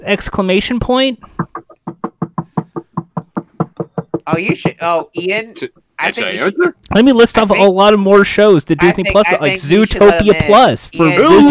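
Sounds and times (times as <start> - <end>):
speech: 0.0 - 1.5, 4.3 - 11.4
rapid loud knocking on a door: 1.3 - 4.8.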